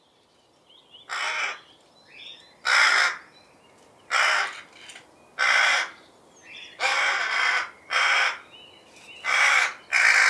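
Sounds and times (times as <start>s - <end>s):
birds twittering: 0.7s - 10.2s
rook cawing: 1.1s - 1.6s, 2.6s - 3.3s, 4.1s - 4.7s, 5.4s - 6.0s, 6.8s - 8.5s, 9.2s - 10.2s.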